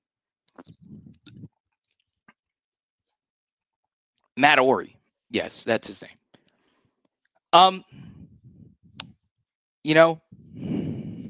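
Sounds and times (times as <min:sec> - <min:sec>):
wet gulping and swallowing of water: 0:00.5 - 0:01.6
speech: 0:04.4 - 0:06.2, 0:07.5 - 0:08.1, 0:09.8 - 0:10.7.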